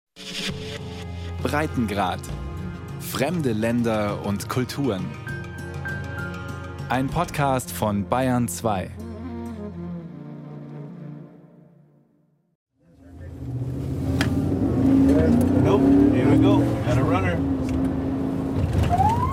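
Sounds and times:
speech: 0.2s - 5.3s, 6.9s - 9.0s
border police car revving and accelerating by the border fence in El Paso: 12.9s - 19.3s.

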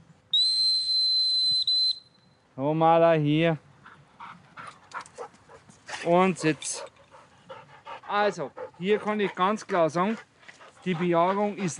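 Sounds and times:
shrill dog whistle blown to call back a hunting dog during a hunt with a hawk: 0.3s - 2.2s
speech: 2.6s - 3.6s, 6.0s - 6.9s, 8.1s - 11.7s.

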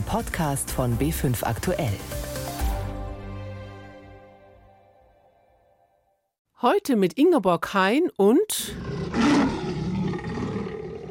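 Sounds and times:
speech: 0.1s - 2.3s, 6.6s - 9.3s
tiger roaring: 8.7s - 11.0s.

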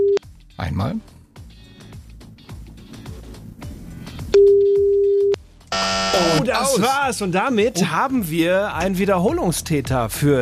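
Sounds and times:
speech: 0.8s - 1.1s, 6.4s - 10.3s
telephone ringback tone while calling a mobile phone: 4.4s - 6.4s.

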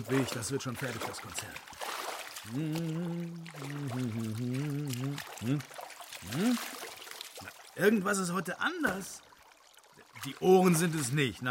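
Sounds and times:
speech: 0.0s - 1.8s, 2.4s - 6.8s, 7.4s - 9.3s, 10.2s - 11.4s
bath water sloshing and trickling as a body slides in: 0.0s - 11.4s
person humming contentedly: 2.4s - 6.8s.

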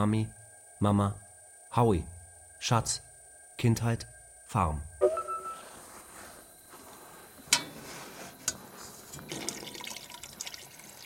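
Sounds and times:
speech: 0.0s - 4.9s
water poured into a tank: 9.1s - 11.0s.

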